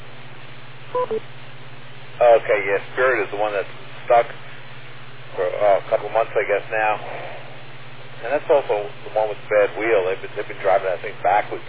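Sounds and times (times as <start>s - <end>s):
steady low hum: 0.0s - 11.6s
speech: 0.9s - 1.4s, 2.2s - 4.5s, 5.4s - 7.4s, 8.2s - 11.6s
amateur radio repeater beep with two short electronic tones: 1.0s - 1.2s.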